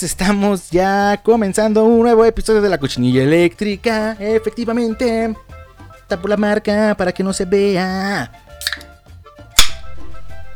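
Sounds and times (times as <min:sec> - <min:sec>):
speech: 0:00.0 - 0:08.9
bottle being uncapped with a pop and fizz: 0:08.6 - 0:09.0, 0:09.6 - 0:10.0.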